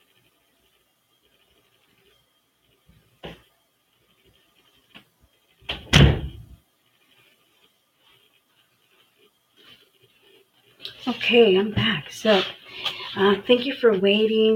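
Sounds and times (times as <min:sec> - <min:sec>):
door slamming shut: 0:05.7 - 0:06.6
speech: 0:11.0 - 0:12.6, 0:13.2 - 0:14.5.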